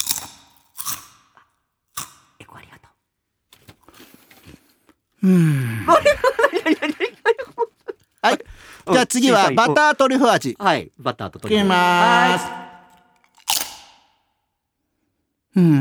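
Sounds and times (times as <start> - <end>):
crunching potato chips seasoned with two kinds of rock salt: 0.0 - 2.7, 3.5 - 5.0, 13.1 - 14.2
speech: 5.2 - 7.1, 8.2 - 12.6, 15.6 - 15.8
laughter: 5.3 - 10.2, 11.4 - 12.9.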